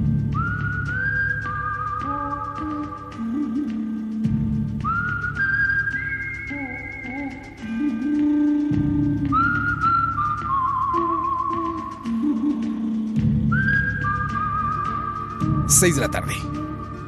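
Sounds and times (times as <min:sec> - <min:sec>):
whistled western-style melody from a film score: 0:00.2 - 0:03.6, 0:04.8 - 0:17.0
speech: 0:15.8 - 0:16.6.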